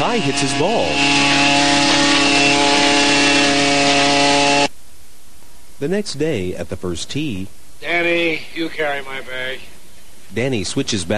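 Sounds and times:
leaf blower engine running: 0.0s - 4.7s
speech: 0.2s - 1.6s, 5.8s - 11.1s.

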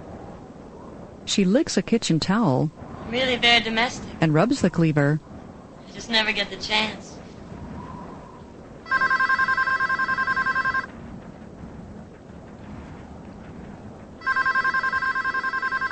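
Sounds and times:
low hiss: 0.0s - 15.9s
speech: 1.3s - 5.3s, 6.0s - 7.1s
telephone ringing with trilling electronic bell tones: 8.9s - 10.9s, 14.2s - 15.9s.

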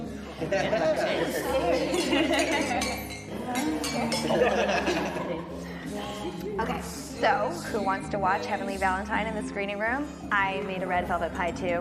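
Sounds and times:
lively hum of overlapping voices: 0.0s - 11.8s
laughter: 0.2s - 2.9s, 4.0s - 6.0s
speech: 0.4s - 1.4s, 3.6s - 11.8s
glasses clinking together in a toast: 1.2s - 4.6s.

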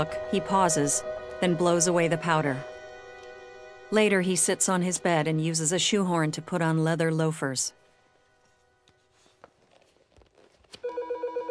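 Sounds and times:
speech: 0.0s - 2.7s, 3.9s - 7.8s
quiet shuffling: 7.8s - 10.8s
wall telephone bell ringing: 10.8s - 11.4s.

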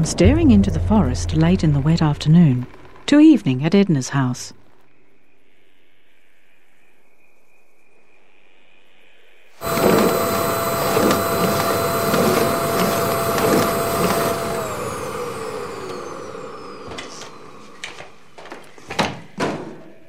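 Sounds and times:
speech: 0.0s - 4.6s
vacuum cleaner running with a steady whine: 9.6s - 18.8s.

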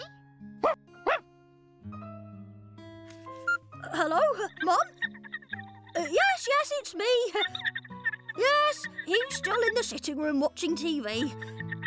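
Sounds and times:
dog barking: 0.6s - 1.2s
speech: 4.0s - 5.0s, 6.0s - 7.7s, 8.4s - 11.6s.

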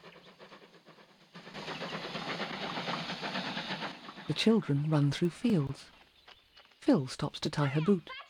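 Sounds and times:
steam train chugging along rails through countryside: 0.0s - 4.3s
speech: 4.3s - 6.0s, 6.9s - 8.2s.

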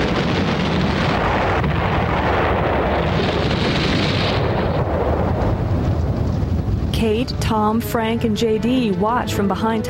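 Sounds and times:
small gasoline tank ignited by methane from a garbage dump exploding into fire: 0.0s - 7.4s
speech: 7.5s - 9.8s.

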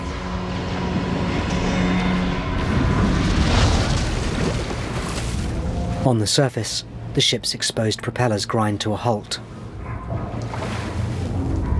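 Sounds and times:
deep rumbling explosions aboard a ship: 0.0s - 6.0s
low churning rumble: 0.0s - 11.7s
speech: 6.0s - 9.6s.

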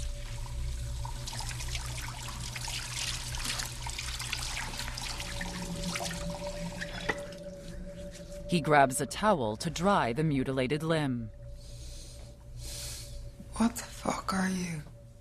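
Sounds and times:
water running into a sink as a hand is rinsed of dried blood: 0.0s - 7.5s
low constant hum: 0.0s - 15.2s
speech: 8.5s - 11.4s, 13.6s - 14.9s.

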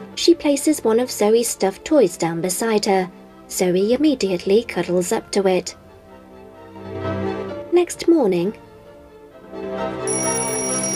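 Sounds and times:
speech: 0.2s - 5.8s, 7.8s - 8.6s
shrill high ringing: 10.1s - 10.9s
square-faced bedside alarm clock with a steady electronic tone: 10.1s - 10.9s.

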